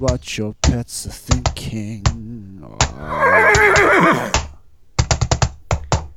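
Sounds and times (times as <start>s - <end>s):
speech: 0.0s - 4.4s
sharp hoof clops trotting: 1.4s - 4.4s
horse neighing: 2.4s - 4.4s.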